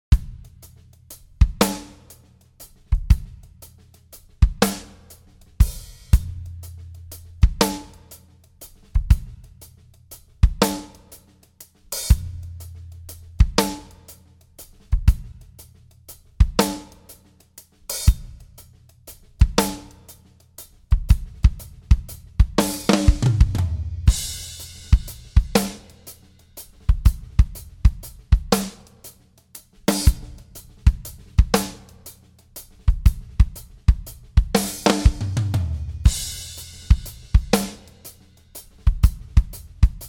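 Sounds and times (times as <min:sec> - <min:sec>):
acoustic drum beat: 0:00.0 - 0:40.0.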